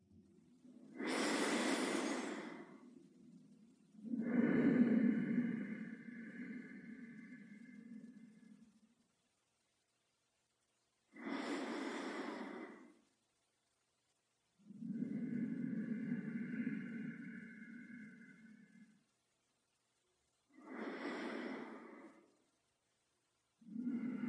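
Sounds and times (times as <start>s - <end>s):
slow rhythmic breathing through the nose: 0.6s - 9.0s, 11.1s - 13.1s, 14.6s - 19.2s, 20.4s - 22.7s, 23.5s - 24.2s.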